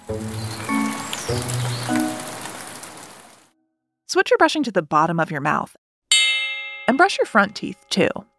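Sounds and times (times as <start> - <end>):
soft melody of sustained musical notes: 0.0 - 2.8
steady rain falling: 0.0 - 3.5
speech: 0.1 - 0.4, 4.1 - 5.8, 6.9 - 8.3.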